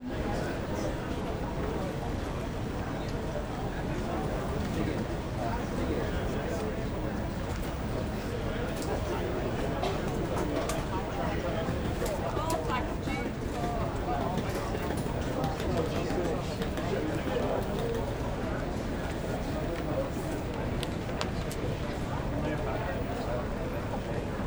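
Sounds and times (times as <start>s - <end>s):
airport baggage claim interior ambience in Manchester Airport: 0.0s - 24.4s.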